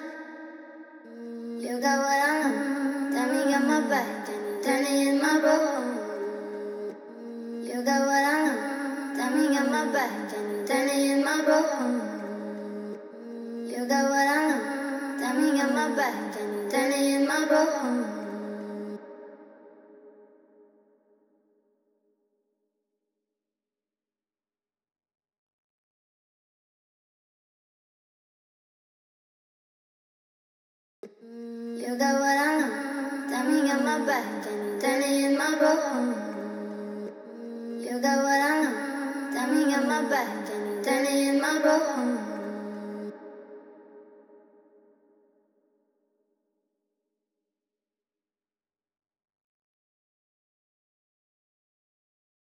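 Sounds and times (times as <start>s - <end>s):
trap vocals in G sharp minor: 1.0s - 19.0s, 31.0s - 43.3s.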